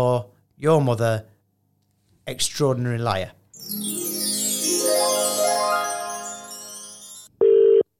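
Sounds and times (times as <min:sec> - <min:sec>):
speech: 0:00.0 - 0:01.3, 0:02.3 - 0:04.0
busy musical passage with sweeping tones: 0:03.6 - 0:07.3
telephone ringing tone on an outgoing call: 0:07.3 - 0:07.9.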